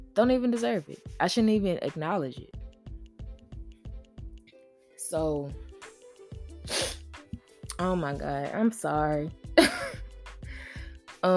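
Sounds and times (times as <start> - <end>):
speech: 0.2 - 2.6, 5.1 - 5.6, 7.8 - 9.9
quick nasal sniffs: 6.6 - 7.2.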